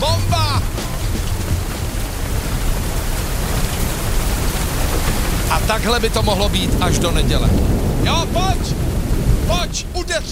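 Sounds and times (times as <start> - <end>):
heavy rain pouring down: 0.0 - 10.2
speech: 5.7 - 8.9, 9.5 - 10.2.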